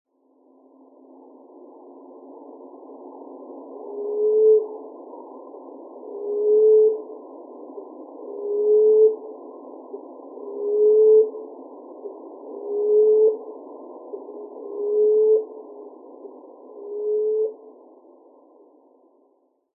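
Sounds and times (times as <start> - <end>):
common emerald dove calling: 6.0 - 7.1, 7.8 - 9.3, 9.9 - 13.5, 14.1 - 17.6.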